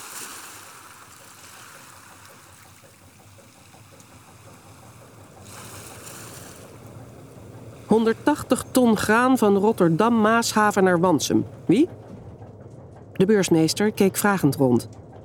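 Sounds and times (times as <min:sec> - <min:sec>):
waves breaking on hard sand of the Zeeland coast: 0:00.0 - 0:11.0
speech: 0:07.9 - 0:12.0, 0:13.2 - 0:15.0.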